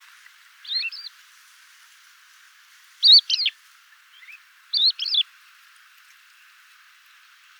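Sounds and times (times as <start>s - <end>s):
crested lark calling with clear slurred whistled notes: 0.6s - 1.1s, 3.0s - 3.5s, 4.2s - 5.2s.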